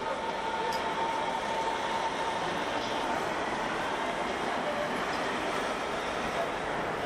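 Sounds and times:
train pulling into a station platform in Berlin: 0.0 - 7.0.

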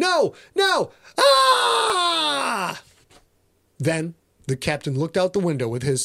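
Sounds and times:
speech: 0.2 - 2.9, 3.8 - 6.0
performed scream over a radio from a PT boat: 1.2 - 2.8.

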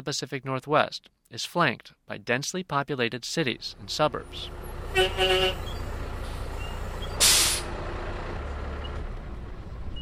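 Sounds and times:
speech: 0.0 - 5.8
large bus engine idling: 3.5 - 10.0
large bus horn toots: 4.8 - 5.9
bus air brakes hissing: 5.5 - 7.8.

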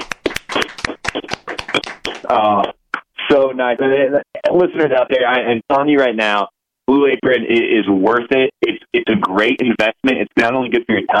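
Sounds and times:
hand clapping: 0.0 - 3.1
speech: 2.3 - 11.1.

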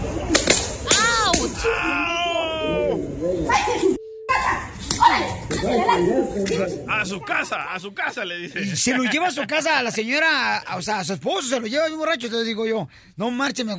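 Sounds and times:
slaps to the face: 0.3 - 1.6
excited voices talking: 0.8 - 10.3
high wailing cries: 1.0 - 3.0
speech: 5.6 - 13.7.

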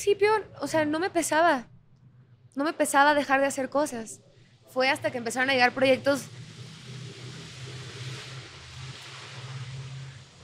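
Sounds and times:
speech: 0.0 - 1.7, 2.6 - 6.4
car passing outside: 5.0 - 10.4.

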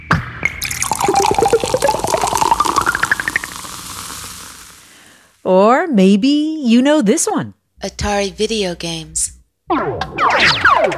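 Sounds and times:
synthesized soda bottle pop: 0.4 - 4.9
bubbly glassy electronic blips rising in pitch: 0.5 - 5.2
speech: 5.5 - 10.9.

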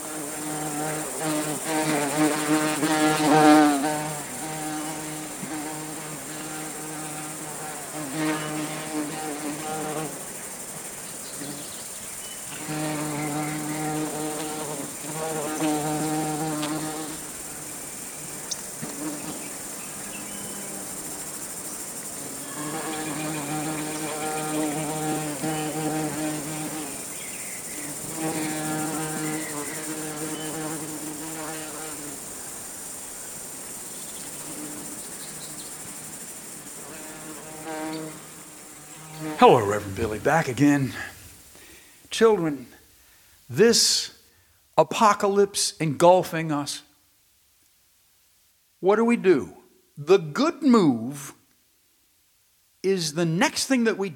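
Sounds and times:
rusty-patched bumblebee buzzing: 0.0 - 41.4
speech: 39.4 - 41.1, 42.2 - 42.7, 43.5 - 44.1, 44.8 - 46.8, 48.8 - 51.3, 52.8 - 54.1.

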